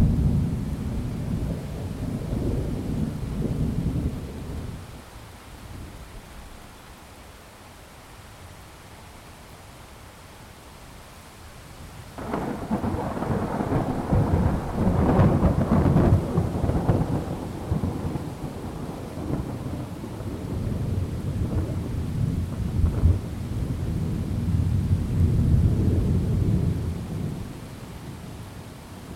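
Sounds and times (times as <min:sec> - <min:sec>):
thunder rumbling: 0:00.0 - 0:04.8, 0:12.2 - 0:29.1
rain: 0:00.0 - 0:29.1
wind: 0:00.0 - 0:29.1.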